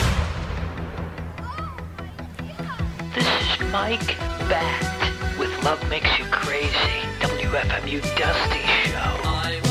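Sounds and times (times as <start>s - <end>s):
cannon booms: 0.0s - 1.4s
speech: 3.2s - 4.9s, 5.6s - 9.6s.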